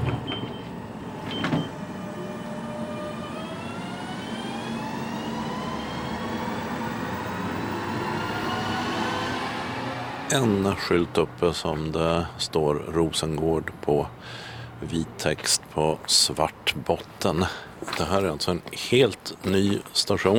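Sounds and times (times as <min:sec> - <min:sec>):
train doors clunking shut: 0:00.0 - 0:02.7
electric train pulling away with motor whine and rumble: 0:00.0 - 0:11.1
speech: 0:10.3 - 0:20.3.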